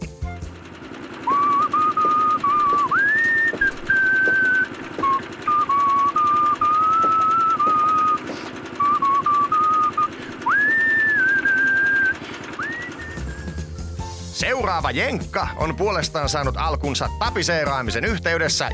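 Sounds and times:
steady loud mechanical chugging: 0:00.2 - 0:14.1
whistled tango melody with gliding notes: 0:01.2 - 0:14.2
speech: 0:14.7 - 0:18.7.

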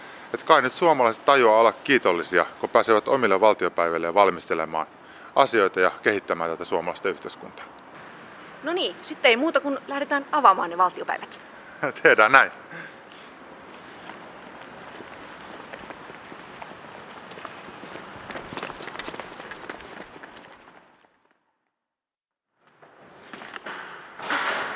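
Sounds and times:
speech: 0:00.5 - 0:07.8, 0:08.6 - 0:12.9
footsteps going through a gate and up stairs: 0:13.7 - 0:21.2.

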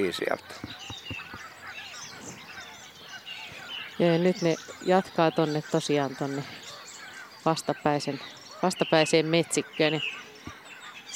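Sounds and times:
speech: 0:00.0 - 0:00.9, 0:04.0 - 0:06.6, 0:07.4 - 0:10.2
flock of geese honking at a lake in the morning: 0:00.0 - 0:11.1.

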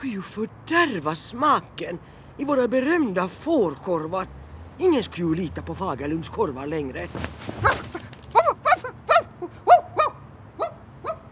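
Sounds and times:
speech: 0:00.0 - 0:07.9
dog barking and yelping: 0:07.5 - 0:11.3.

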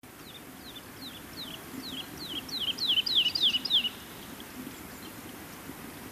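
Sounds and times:
soft background hiss: 0:00.0 - 0:06.0
woodlark singing a fluting phrase of clear whistled notes: 0:00.6 - 0:04.0.

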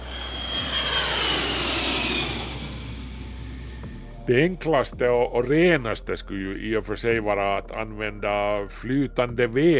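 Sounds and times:
jet airplane engine roar: 0:00.0 - 0:04.2
speech: 0:04.3 - 0:09.7.

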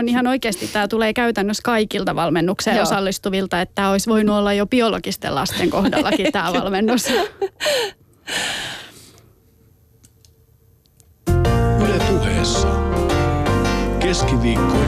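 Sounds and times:
speech: 0:00.0 - 0:08.8, 0:14.0 - 0:14.8
laughter: 0:05.5 - 0:07.8
sharp breaths: 0:07.6 - 0:09.2
theme tune: 0:11.3 - 0:14.8.

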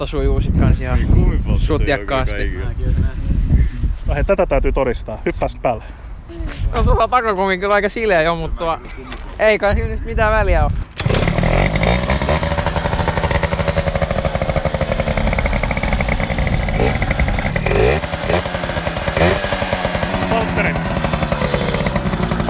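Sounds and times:
speech: 0:00.0 - 0:03.2, 0:04.1 - 0:11.2
small moped engine revving while standing still: 0:10.9 - 0:22.4.

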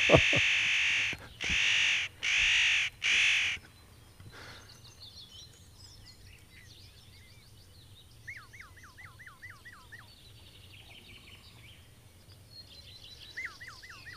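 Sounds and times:
Eurasian jay calls: 0:00.0 - 0:03.6.

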